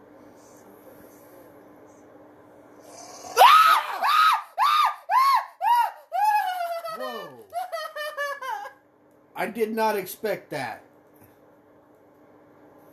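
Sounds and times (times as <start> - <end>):
person screaming in fright: 3.3 - 7.8
laughter: 6.2 - 8.8
speech: 9.4 - 10.9.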